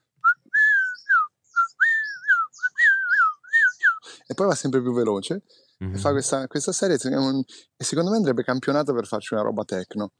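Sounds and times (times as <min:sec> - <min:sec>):
person whistling imitating a tropical bird's song: 0:00.2 - 0:04.1
speech: 0:04.4 - 0:10.1.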